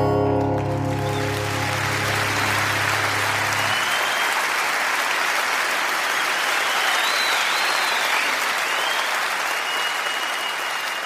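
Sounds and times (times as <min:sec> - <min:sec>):
large audience applauding at end of live song: 0:00.1 - 0:11.0
faint whistles from the audience: 0:03.6 - 0:04.5, 0:06.1 - 0:11.0.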